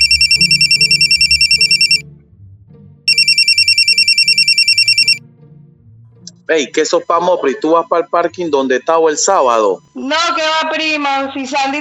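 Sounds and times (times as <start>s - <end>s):
telephone ringing with an incoming call: 0.0s - 2.0s, 3.1s - 5.2s
speech: 6.5s - 11.8s.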